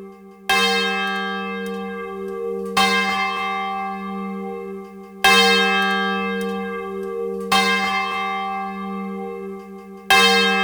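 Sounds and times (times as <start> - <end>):
large swinging church bell ringing a call to worship: 0.0 - 10.6.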